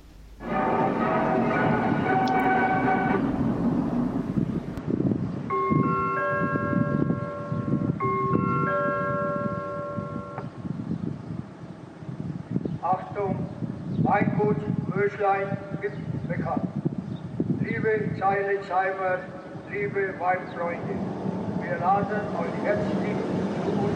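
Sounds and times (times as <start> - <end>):
strong wind roaring outdoors: 0.0 - 23.9
ringing chime-like tones: 5.5 - 10.4
speech: 18.2 - 21.1, 21.7 - 23.4.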